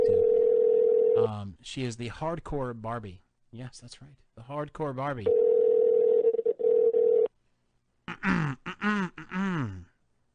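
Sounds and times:
outgoing phone call line tone: 0.0 - 1.2, 5.3 - 7.3
speech: 1.2 - 5.4, 8.2 - 9.9
person making voiced throat noises: 8.1 - 10.0.

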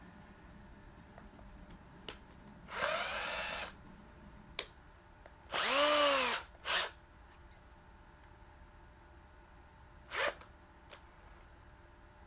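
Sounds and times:
power drill whirring: 2.6 - 3.8, 5.5 - 7.0, 10.1 - 10.5.

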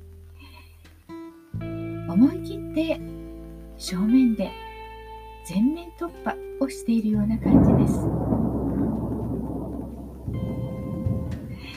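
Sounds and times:
faint rain patter: 0.0 - 11.7
speech: 2.1 - 3.2, 3.8 - 4.6, 5.5 - 8.2
thunder rumbling: 7.2 - 11.7.

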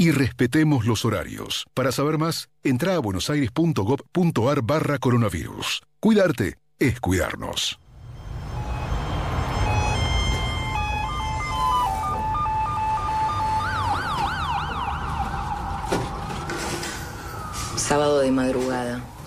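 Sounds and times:
speech: 0.0 - 7.8, 17.9 - 19.1
ambulance siren wailing: 7.8 - 19.2
low traffic rumble: 7.8 - 19.2.

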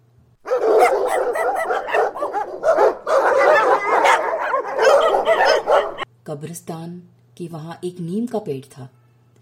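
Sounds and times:
several dogs barking, yelping and whining: 0.4 - 6.1
speech: 6.3 - 9.0.

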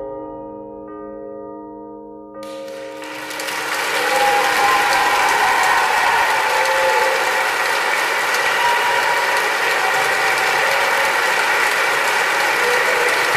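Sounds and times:
large audience applause in a hall: 2.5 - 13.3.

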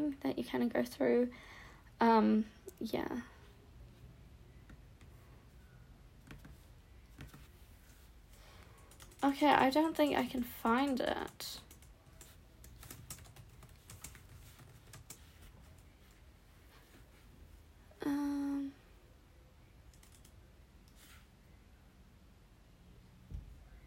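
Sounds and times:
speech: 0.1 - 3.3, 9.2 - 11.6
typing on a computer keyboard: 8.6 - 16.0, 19.9 - 20.4.

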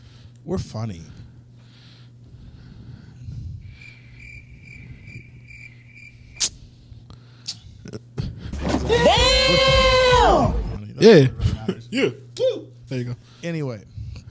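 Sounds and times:
speech: 0.4 - 1.2, 11.0 - 13.9
crickets chirping: 3.6 - 6.5
loud rising wailing cry: 8.6 - 10.8.

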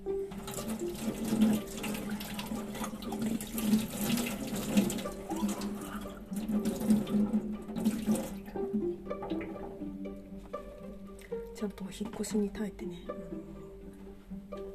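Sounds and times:
tap water running and splashing over a small ceramic teapot being rinsed: 0.0 - 11.6
speech: 12.0 - 13.6.

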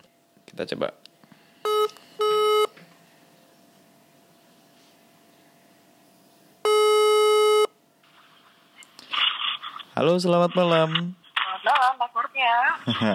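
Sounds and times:
speech: 0.5 - 1.1, 10.0 - 13.1
phone ringback tone over a quiet line: 1.6 - 2.8, 6.6 - 7.7.

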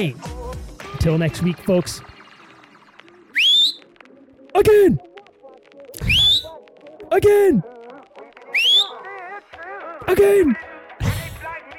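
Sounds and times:
speech: 0.0 - 0.3, 1.0 - 2.1, 4.6 - 5.1, 7.2 - 7.8, 10.0 - 10.7
person whistling a bright note sliding upward: 3.3 - 3.9, 6.0 - 6.6, 8.5 - 9.1.

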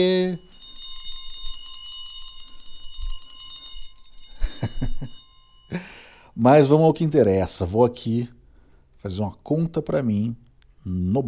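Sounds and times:
speech: 0.0 - 0.6, 5.7 - 8.4, 9.0 - 11.2
hand bell ringing from a phone app: 0.0 - 6.3.

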